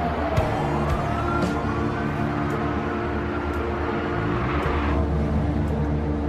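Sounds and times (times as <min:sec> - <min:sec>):
ambulance engine and road noise speeding along a road toward Tehran: 0:00.0 - 0:06.2.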